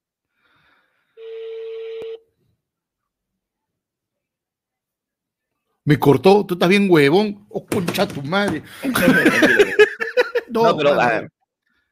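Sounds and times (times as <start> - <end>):
telephone ringing: 1.2 - 2.2
speech: 5.9 - 11.4
laughter: 8.6 - 11.2.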